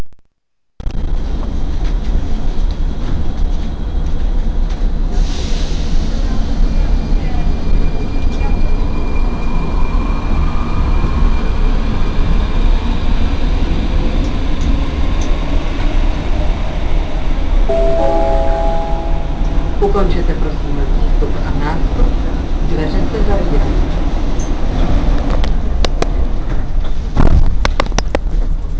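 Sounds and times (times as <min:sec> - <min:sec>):
metro train in Prague: 0:01.1 - 0:28.7.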